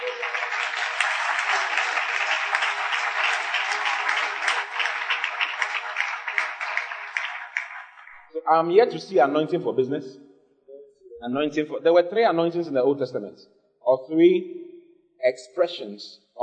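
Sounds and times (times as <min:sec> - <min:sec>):
audience applause: 0:00.0 - 0:08.3
speech: 0:08.4 - 0:10.3, 0:11.2 - 0:14.6, 0:15.2 - 0:16.4.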